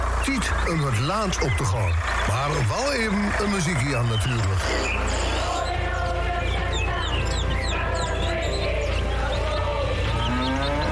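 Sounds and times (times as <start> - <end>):
small birds chirping and tweeting: 0.0 - 10.8
steady low hum: 0.0 - 10.8
speech: 0.2 - 5.4
cow mooing with long lowing: 10.1 - 10.8.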